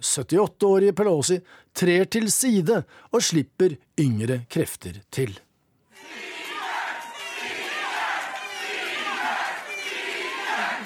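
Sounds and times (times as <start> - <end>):
speech: 0.0 - 5.5
large election night crowd cheering and screaming wildly: 5.9 - 10.8.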